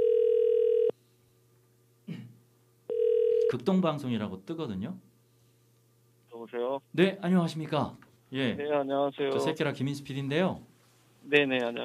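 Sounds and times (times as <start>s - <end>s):
telephone ringback tone over a line: 0.0s - 0.9s, 2.9s - 3.5s
speech: 3.5s - 5.1s, 6.5s - 11.8s.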